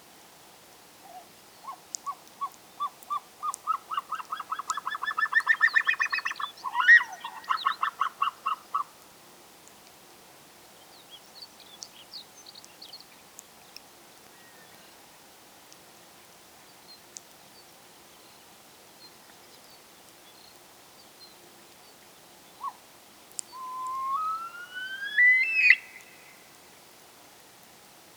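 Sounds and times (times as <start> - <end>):
Himalayan Snowcock Tetraogallus himalayensis calling: 1.1 - 8.9, 23.4 - 26.6.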